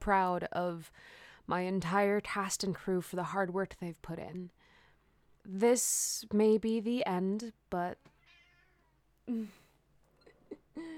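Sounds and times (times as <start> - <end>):
speech: 0.0 - 4.6, 5.4 - 8.1, 9.3 - 9.6
cat chirping: 8.2 - 8.9
cat meowing: 8.2 - 9.0.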